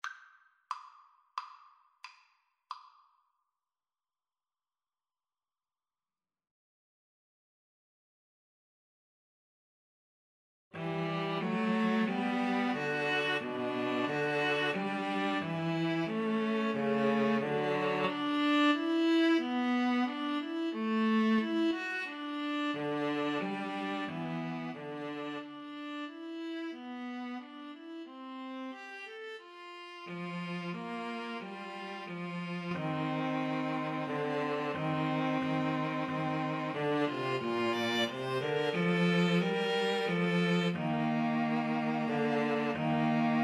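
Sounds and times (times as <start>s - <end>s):
string trio playing: 10.8s - 43.4s.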